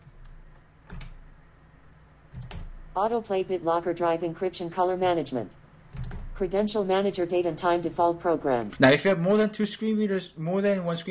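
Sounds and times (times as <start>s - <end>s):
computer keyboard keys being pressed: 0.0s - 1.2s, 2.3s - 2.8s, 5.9s - 6.4s
low steady hum: 0.0s - 11.0s
speech: 3.0s - 5.6s, 6.4s - 11.0s.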